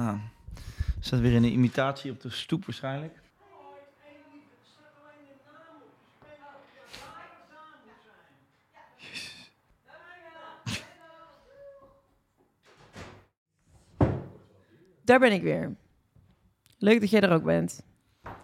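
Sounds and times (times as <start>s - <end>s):
speech: 0.1s - 3.2s, 15.1s - 15.8s, 16.8s - 17.9s
front door opening and shutting: 12.6s - 14.4s.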